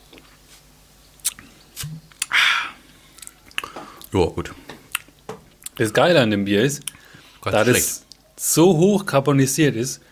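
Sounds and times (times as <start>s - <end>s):
wet mouth clicks and lip sounds: 1.2s - 2.6s, 3.2s - 4.1s, 4.9s - 5.8s
faint mouth noises: 1.2s - 4.2s
speech: 4.1s - 4.7s, 5.8s - 10.1s.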